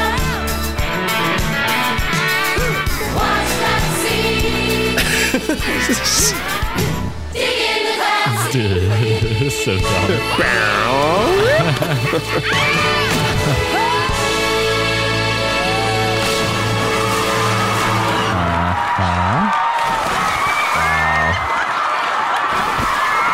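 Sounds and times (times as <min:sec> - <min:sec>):
steady tonal backing: 0:00.2 - 0:19.5
laughter: 0:05.0 - 0:06.7, 0:08.2 - 0:14.1, 0:18.1 - 0:19.6, 0:20.6 - 0:22.8
speech: 0:05.9 - 0:06.5, 0:09.6 - 0:13.8
crowd of women of an island shrieking and whooping: 0:11.4 - 0:14.3, 0:15.5 - 0:16.5, 0:19.5 - 0:23.3.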